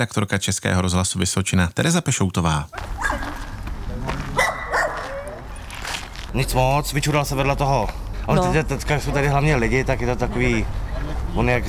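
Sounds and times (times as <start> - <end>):
speech: 0.0 - 3.2, 6.3 - 11.6
steady outdoor noise: 0.0 - 11.6
dog barking in short sharp yelps: 3.0 - 3.5, 4.4 - 5.4.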